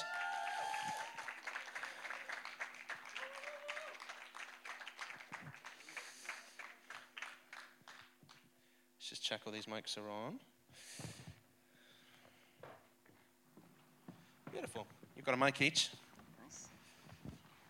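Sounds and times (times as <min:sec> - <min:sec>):
whoops: 0:00.0 - 0:02.4, 0:03.0 - 0:04.2
audience applause: 0:00.0 - 0:08.1
speech: 0:09.3 - 0:11.1, 0:14.6 - 0:16.0.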